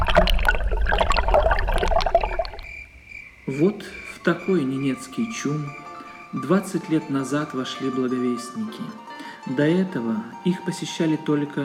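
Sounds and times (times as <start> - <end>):
mountain spring water flowing down from the Ural Mountains in the Cis-Ural tundra: 0.0 - 2.9
speech: 3.5 - 11.6.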